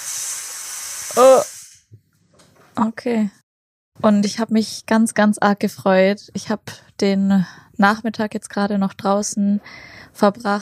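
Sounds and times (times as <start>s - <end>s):
coffee machine hissing after making coffee: 0.0s - 1.8s
speech: 1.1s - 1.5s, 2.8s - 3.4s, 4.0s - 10.5s.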